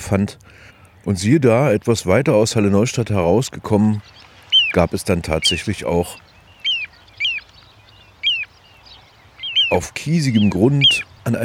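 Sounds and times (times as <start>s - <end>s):
speech: 0.1s - 6.3s, 9.7s - 11.4s
little ringed plover calling on gravelly ground by a riverside meadow: 4.0s - 11.4s.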